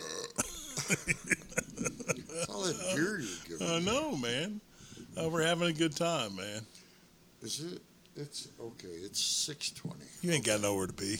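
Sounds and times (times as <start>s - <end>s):
short guttural burps: 0.0s - 0.6s
laughter: 0.4s - 3.7s
speech: 0.9s - 6.8s, 7.4s - 11.1s.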